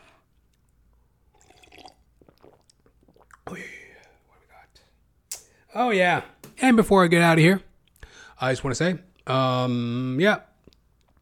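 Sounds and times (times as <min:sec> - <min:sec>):
person sipping water: 0:00.1 - 0:04.3
swallowing: 0:01.3 - 0:04.2
speech: 0:03.5 - 0:03.8, 0:05.7 - 0:07.7, 0:08.4 - 0:10.5.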